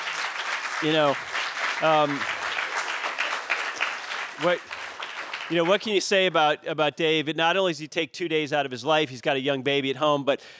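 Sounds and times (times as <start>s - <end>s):
audience at a live comedy show applauding: 0.0s - 6.0s
speech: 0.8s - 2.4s, 4.4s - 4.8s, 5.5s - 10.5s.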